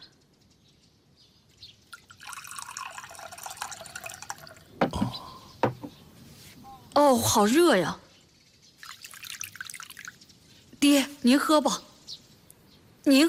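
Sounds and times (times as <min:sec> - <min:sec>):
water pouring into a cup: 0:01.9 - 0:04.8, 0:08.8 - 0:10.2
sharp knocks: 0:04.8 - 0:05.9
speech: 0:07.0 - 0:08.0, 0:10.9 - 0:11.9, 0:13.1 - 0:13.2.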